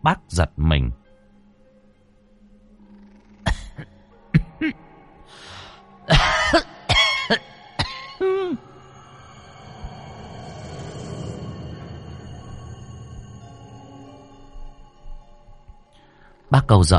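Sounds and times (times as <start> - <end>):
speech: 0.0 - 1.0, 4.6 - 4.8, 16.7 - 16.9
harsh racking wheezy coughing: 6.1 - 8.6
low lingering drone: 7.6 - 15.9.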